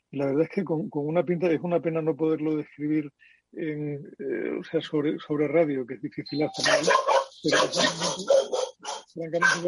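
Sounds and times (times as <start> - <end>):
speech: 0.1 - 8.6, 9.2 - 9.6
dog barking excitedly: 6.6 - 9.6.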